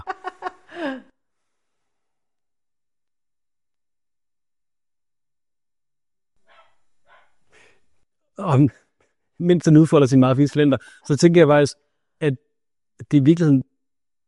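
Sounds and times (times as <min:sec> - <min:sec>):
dog barking: 0:06.4 - 0:07.4
speech: 0:08.4 - 0:08.8, 0:09.4 - 0:12.4, 0:13.0 - 0:13.7.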